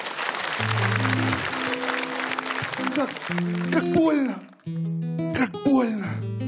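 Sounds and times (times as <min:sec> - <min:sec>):
crowd applause: 0:00.0 - 0:04.7
sustained musical notes: 0:00.6 - 0:05.4
speech: 0:03.0 - 0:06.4.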